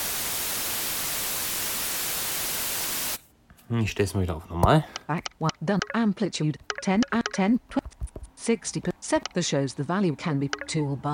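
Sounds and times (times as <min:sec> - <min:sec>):
steady bright hiss of generated broadband noise: 0:00.0 - 0:04.8
speech: 0:03.7 - 0:11.1.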